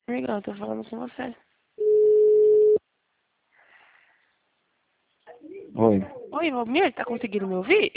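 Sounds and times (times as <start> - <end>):
speech: 0.2 - 1.5, 5.8 - 7.9
telephone tone as a call drops: 1.8 - 2.8.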